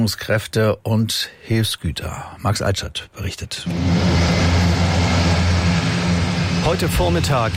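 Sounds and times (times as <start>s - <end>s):
speech: 0.0s - 4.6s, 6.6s - 7.5s
large grey propeller transport aircraft taking off from a military airfield: 3.7s - 7.5s.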